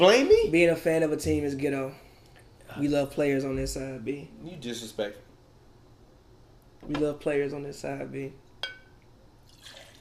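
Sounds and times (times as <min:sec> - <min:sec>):
speech: 0:00.0 - 0:02.0, 0:02.7 - 0:05.3, 0:06.8 - 0:08.4
short glassy clink: 0:08.6 - 0:09.0
wine pouring into a cup: 0:09.4 - 0:09.9.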